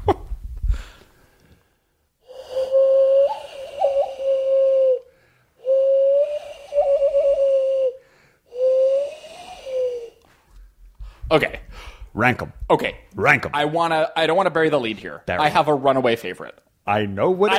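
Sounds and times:
person whistling an imitation of a bald eagle call: 0:02.5 - 0:10.2
speech: 0:11.4 - 0:11.6, 0:12.2 - 0:17.5.

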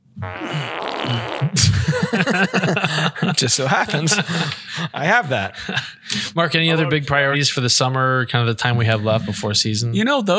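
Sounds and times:
fart noise: 0:00.2 - 0:01.9
speech: 0:00.2 - 0:10.3
laughter: 0:01.6 - 0:07.0.

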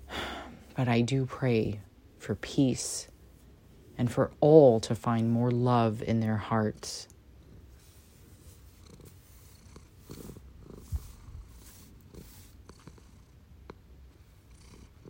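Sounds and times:
speech: 0:00.8 - 0:03.1, 0:04.0 - 0:07.1
male cat purring: 0:06.5 - 0:15.0.

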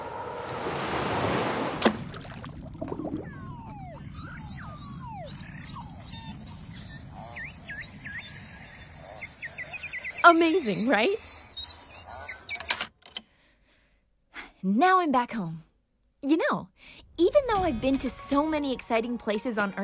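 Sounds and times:
rushing surface noise on a windy day in the Arctic Ocean: 0:00.0 - 0:04.3
steady low underwater rumble: 0:02.1 - 0:05.2
beluga whale song underwater: 0:02.2 - 0:08.2
speech: 0:10.3 - 0:11.3, 0:14.6 - 0:19.8.

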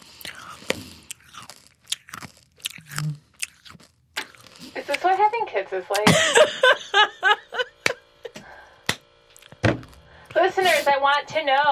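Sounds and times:
faint mouth sounds: 0:00.0 - 0:05.1
chewing and crunching small hard Tic Tac mints: 0:00.0 - 0:06.1, 0:08.4 - 0:11.2
speech: 0:05.6 - 0:07.2, 0:10.6 - 0:11.6
laughter: 0:05.9 - 0:08.5.

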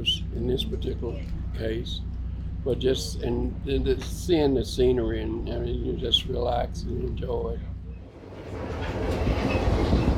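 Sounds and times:
speech: 0:00.0 - 0:07.7
train with a caboose rolling along rails, clickety-clack of wheels over track joints: 0:08.2 - 0:10.1.

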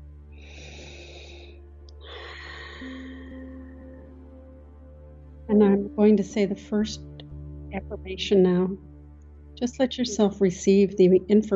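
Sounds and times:
low tonal drone: 0:00.0 - 0:11.5
slow deep breath in and out: 0:00.4 - 0:04.1
speech: 0:02.8 - 0:03.1, 0:05.5 - 0:07.1, 0:07.8 - 0:08.9, 0:09.6 - 0:11.5.

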